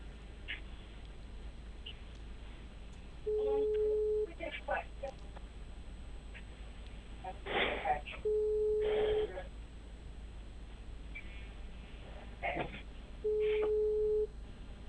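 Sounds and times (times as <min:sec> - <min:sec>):
telephone line noise: 0:00.0 - 0:14.8
telephone line busy signal beeps: 0:03.3 - 0:04.3, 0:08.2 - 0:09.3, 0:13.2 - 0:14.3.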